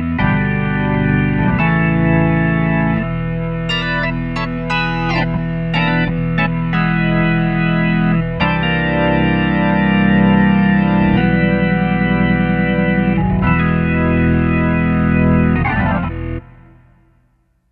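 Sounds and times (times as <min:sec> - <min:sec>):
Kawai K5000S synthesizer factory preset sound: 0:00.2 - 0:17.4.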